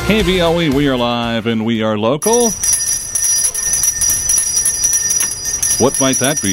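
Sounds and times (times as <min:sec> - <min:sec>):
speech: 0:00.1 - 0:02.7, 0:05.8 - 0:06.5
charity bell ringers' handbell ringing: 0:02.3 - 0:06.5.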